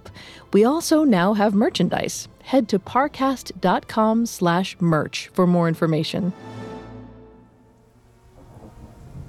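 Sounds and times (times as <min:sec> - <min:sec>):
speech: 0:00.5 - 0:06.5
thunder rumbling: 0:08.2 - 0:09.2.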